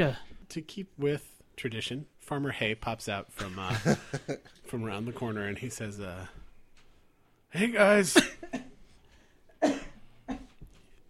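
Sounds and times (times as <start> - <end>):
speech: 0.0 - 6.4, 7.5 - 8.6
person coughing harshly: 8.1 - 8.8, 9.6 - 10.6.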